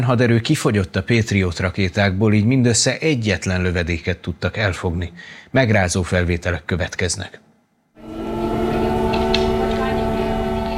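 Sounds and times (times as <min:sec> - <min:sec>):
speech: 0:00.0 - 0:07.4
air raid warning siren wailing during air attack in Kyiv: 0:08.0 - 0:10.7.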